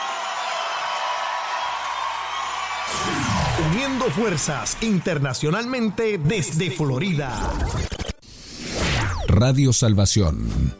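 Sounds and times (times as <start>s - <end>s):
whooping: 0.0s - 7.3s
big crowd applauding loudly: 0.0s - 7.4s
speech: 3.6s - 8.0s, 9.4s - 10.7s.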